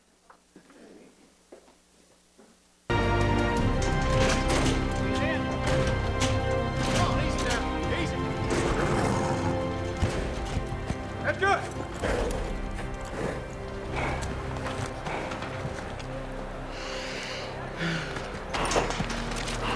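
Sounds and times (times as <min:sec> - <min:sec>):
racehorse hooves galloping in a film race scene: 0:02.9 - 0:16.7, 0:18.0 - 0:19.7.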